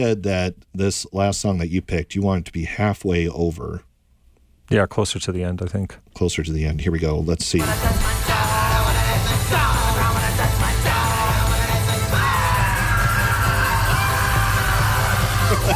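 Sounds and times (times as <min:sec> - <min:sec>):
speech: 0:00.0 - 0:03.9, 0:04.7 - 0:08.3
loud dense rock music with heavy drums and bass: 0:07.6 - 0:15.7
yelling and screaming vocals in a Halloween song: 0:12.2 - 0:15.7.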